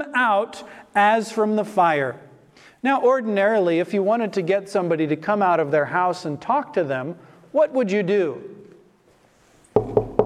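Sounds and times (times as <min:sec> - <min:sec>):
speech: 0:00.0 - 0:08.6
knocking on a wooden door: 0:09.8 - 0:10.2.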